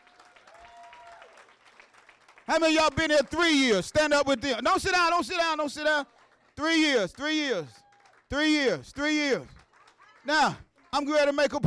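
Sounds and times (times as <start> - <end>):
audience applauding with hand claps: 0.0 - 3.9, 7.6 - 11.0
speech: 2.5 - 9.6, 10.2 - 11.6.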